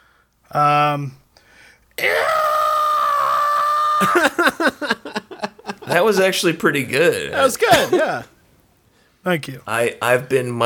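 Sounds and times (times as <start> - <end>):
speech: 0.5 - 1.2, 4.0 - 4.8, 5.9 - 8.3, 9.2 - 10.6
person vocally imitating a stock movie scream: 2.0 - 4.5
laughter: 4.0 - 6.4, 7.4 - 8.3.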